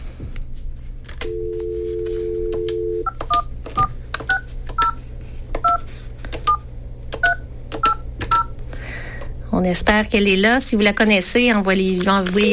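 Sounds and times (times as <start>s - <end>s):
low constant hum: 0.0s - 12.5s
steady telephone dial tone: 1.2s - 3.1s
speech: 9.6s - 12.5s.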